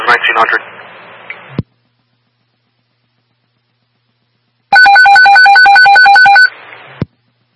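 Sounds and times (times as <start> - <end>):
radio static: 0.0 - 0.9
speech: 0.1 - 0.7
electronic telephone ringing during a nightly phone test: 4.7 - 6.5.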